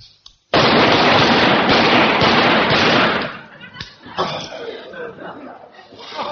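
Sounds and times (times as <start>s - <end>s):
rapid rifle fire on a shooting range: 0.5s - 3.5s
people laughing: 3.2s - 6.2s
people talking: 3.3s - 6.2s.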